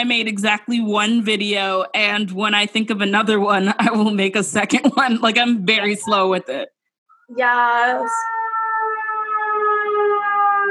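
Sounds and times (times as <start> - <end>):
speech: 0.0 - 8.3
emergency vehicle siren passing: 7.1 - 10.7.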